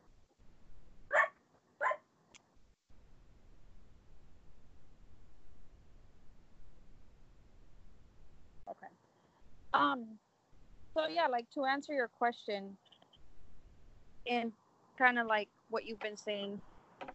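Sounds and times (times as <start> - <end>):
dog barking: 1.1 - 2.0
speech: 9.8 - 10.2, 11.0 - 12.9, 14.2 - 16.7.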